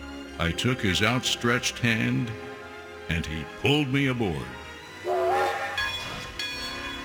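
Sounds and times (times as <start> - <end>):
speech: 0.4 - 2.5, 3.1 - 4.6
bright whistle-like tone: 5.0 - 6.0.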